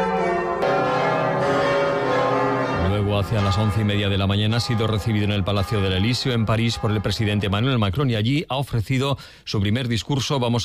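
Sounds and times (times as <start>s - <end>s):
church bells across France pealing in honor of a papal visit: 0.0s - 7.0s
speech: 3.3s - 10.6s.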